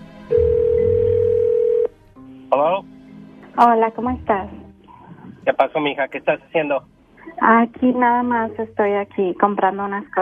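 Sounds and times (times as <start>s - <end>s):
telephone ringing tone from a call placed to a husband: 0.3s - 1.9s
speech: 3.6s - 4.7s, 5.5s - 10.2s.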